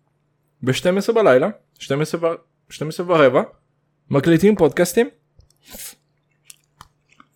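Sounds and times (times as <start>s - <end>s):
speech: 0.6s - 6.0s
wet mouth clicks and smacks: 5.4s - 7.3s
chewing rice at midnight: 6.3s - 7.3s.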